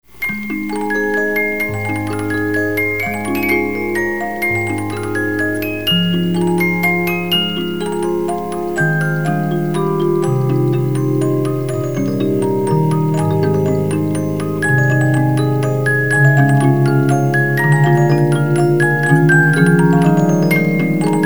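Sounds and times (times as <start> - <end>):
waltz music: 0.0 - 21.2.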